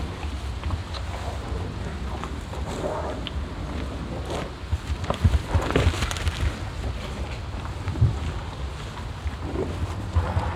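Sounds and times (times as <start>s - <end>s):
cows mouth and breathing sounds on a meadow: 0.0s - 10.5s
steady low rumble of background traffic: 0.0s - 10.5s.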